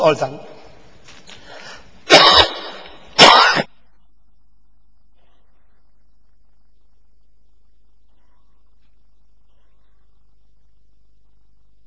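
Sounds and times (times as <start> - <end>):
person coughing: 2.1 - 3.7.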